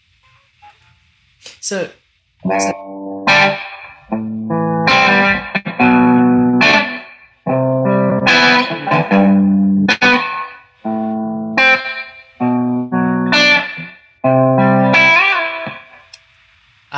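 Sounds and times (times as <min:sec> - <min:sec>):
speech: 0:01.6 - 0:03.6
electric guitar strummed chords through an amp with spring reverb turned all the way up: 0:02.4 - 0:16.0.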